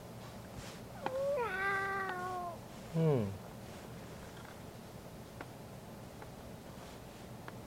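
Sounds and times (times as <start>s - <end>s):
cat meowing: 1.0s - 2.6s.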